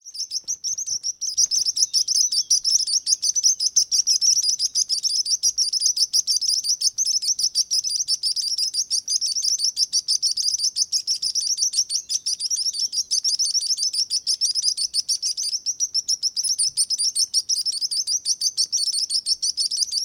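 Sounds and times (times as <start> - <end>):
sparrows twittering with many overlapping high chirps: 0.0 - 20.0.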